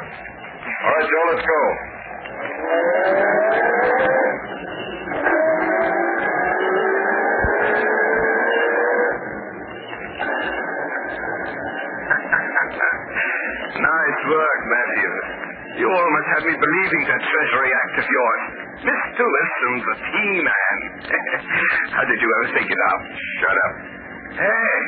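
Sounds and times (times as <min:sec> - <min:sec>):
car engine revving and pulling away through gear shifts: 0:00.0 - 0:19.2
speech: 0:00.8 - 0:05.4, 0:16.4 - 0:24.8
laughter: 0:11.8 - 0:13.8, 0:20.9 - 0:22.4.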